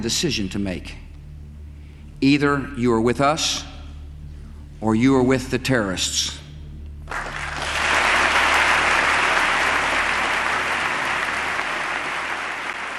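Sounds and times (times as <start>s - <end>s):
speech: 0.0s - 1.1s, 2.2s - 3.7s, 4.8s - 6.4s
large crowd applauding a speech: 7.1s - 12.9s.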